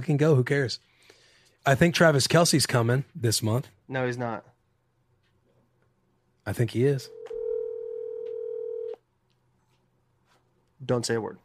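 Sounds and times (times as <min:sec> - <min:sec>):
speech: 0:00.0 - 0:00.9, 0:01.6 - 0:04.5, 0:06.4 - 0:07.2, 0:10.8 - 0:11.4
electronic ringback tone from an outgoing phone call: 0:07.1 - 0:09.0.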